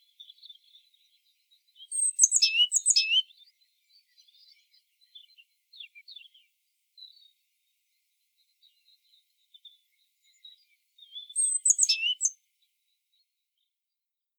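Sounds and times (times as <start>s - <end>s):
great tit Parus major calls: 1.7s - 6.4s, 9.7s - 12.4s.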